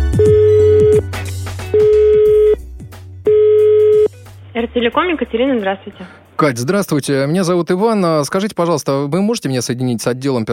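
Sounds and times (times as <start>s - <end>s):
telephone ringback tone on a call to a company: 0.2s - 1.0s, 1.7s - 2.6s, 3.3s - 4.1s
speech: 4.8s - 10.5s.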